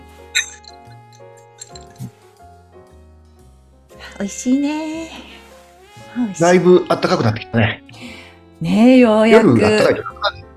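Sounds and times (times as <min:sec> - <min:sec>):
soft music: 0:00.0 - 0:10.5
drinking glasses clinking in a toast: 0:00.4 - 0:02.1
speech: 0:04.2 - 0:05.3, 0:06.2 - 0:07.8, 0:08.6 - 0:10.4.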